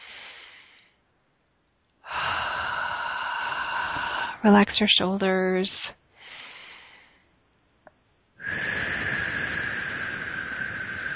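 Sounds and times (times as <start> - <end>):
deep breathing in through the nose and out through the mouth: 0.0 - 1.0, 2.0 - 4.5, 6.1 - 7.4, 8.4 - 11.1
speech: 4.4 - 6.0.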